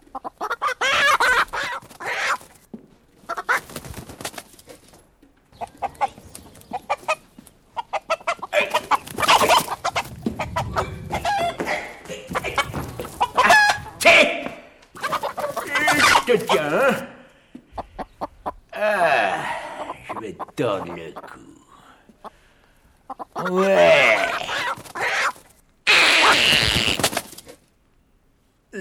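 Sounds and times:
farmyard poultry squawks: 0.0s - 2.6s, 5.6s - 14.0s, 15.0s - 16.6s, 23.1s - 27.3s
chickens clucking among farmyard poultry: 0.0s - 14.0s, 14.8s - 18.7s, 19.4s - 21.4s, 23.0s - 27.5s.

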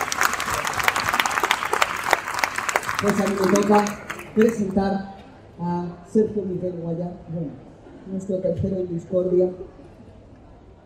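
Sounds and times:
small group applause: 0.0s - 4.8s
speech: 3.0s - 9.8s.

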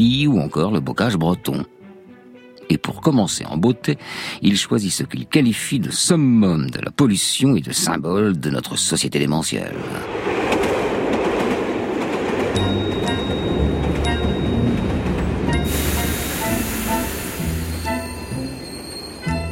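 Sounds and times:
speech: 0.0s - 1.8s, 2.7s - 10.4s
train running on rails: 9.7s - 19.4s
train wheels clickety-clack on rails: 10.3s - 15.8s
thin high-pitched train wheel squeals: 15.7s - 19.4s.

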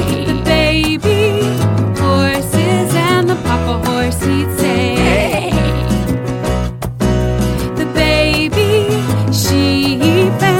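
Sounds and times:
singing voice imitating sheep bleats in a children's farm song: 0.0s - 1.0s, 4.6s - 6.0s
children's farm song music with bass and accompaniment: 0.0s - 10.5s.

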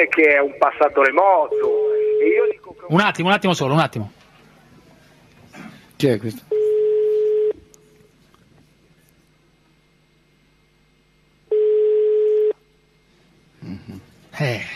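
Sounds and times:
speech: 0.0s - 4.2s, 6.0s - 6.6s, 14.4s - 14.7s
telephone ring tone: 1.5s - 2.6s, 6.5s - 7.6s, 11.5s - 12.6s.

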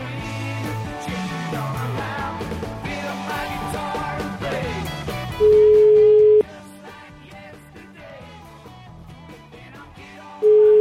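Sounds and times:
music: 0.0s - 10.8s
telephone ringing tone of a call placed to a lawyer: 5.4s - 6.4s, 10.4s - 10.8s.

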